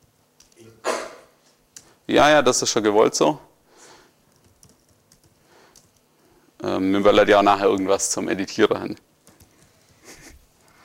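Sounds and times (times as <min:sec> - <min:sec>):
hiss: 0:00.0 - 0:10.8
speech: 0:02.1 - 0:03.5, 0:06.8 - 0:09.1
typing on a computer keyboard: 0:04.3 - 0:06.1, 0:09.2 - 0:10.0, 0:10.6 - 0:10.8.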